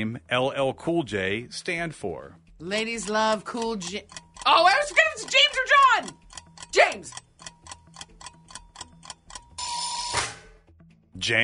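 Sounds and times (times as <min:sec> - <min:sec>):
speech: 0:00.0 - 0:06.2, 0:06.8 - 0:07.2, 0:11.2 - 0:11.4
game-show countdown timer ticking: 0:02.4 - 0:10.0.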